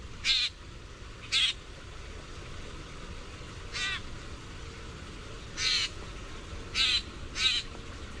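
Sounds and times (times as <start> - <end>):
steady low background hiss: 0.0 - 8.1
common grackle giving harsh buzzy chack calls: 0.2 - 0.6, 1.2 - 1.6, 3.7 - 4.1, 5.6 - 6.0, 6.7 - 7.7.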